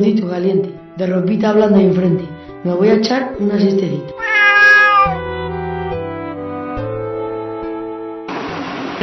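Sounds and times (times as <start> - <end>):
speech: 0.0 - 4.2
drawn-out cat meow: 4.2 - 5.2.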